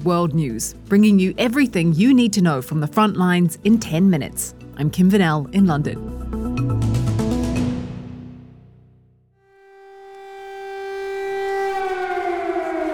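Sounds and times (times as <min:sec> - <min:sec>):
speech: 0:00.0 - 0:06.3
music: 0:00.0 - 0:12.9
civil defense air raid siren wailing: 0:09.4 - 0:12.9.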